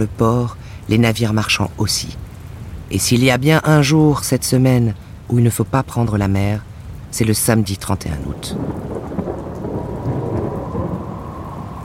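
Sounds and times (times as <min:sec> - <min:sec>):
speech: 0:00.0 - 0:02.3, 0:02.9 - 0:08.9
heavy rain in a summer thunderstorm: 0:00.0 - 0:11.8
thunder rumbling in a summer thunderstorm: 0:08.4 - 0:11.8.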